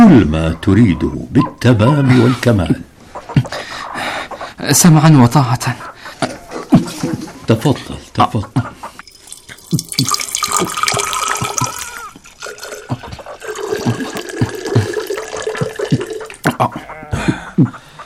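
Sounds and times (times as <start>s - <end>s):
speech: 0.0s - 3.5s, 4.6s - 6.0s, 7.0s - 8.8s, 9.7s - 11.0s
water from Herat pouring into a vessel: 9.0s - 16.5s.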